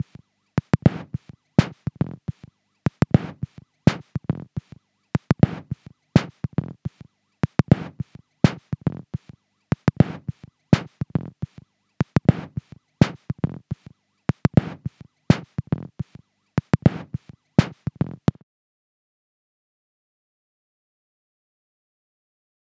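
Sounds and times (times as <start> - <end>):
pulsing beat: 0.6 - 18.4.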